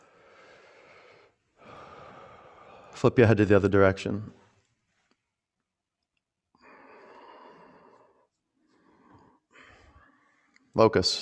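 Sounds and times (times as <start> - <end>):
deep breaths into the belly during a yoga class: 0.0 - 3.0, 6.5 - 10.8
speech: 3.0 - 4.4, 10.8 - 11.2.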